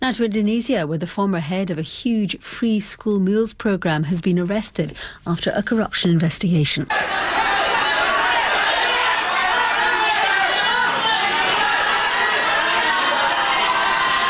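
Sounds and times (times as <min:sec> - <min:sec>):
speech: 0:00.0 - 0:07.6
large crowd chanting and shouting outdoors at the Attorney General's office in Indonesia: 0:06.9 - 0:14.2.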